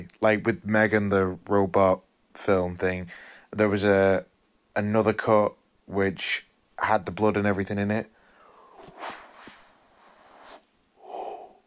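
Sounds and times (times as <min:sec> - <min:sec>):
speech: 0:00.1 - 0:08.2, 0:08.8 - 0:09.2
person yawning: 0:11.0 - 0:11.6.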